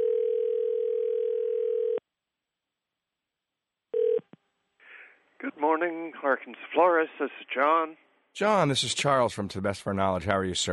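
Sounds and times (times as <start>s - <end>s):
telephone line tone as a call connects: 0.0s - 2.0s, 4.0s - 4.2s
speech: 5.6s - 10.7s.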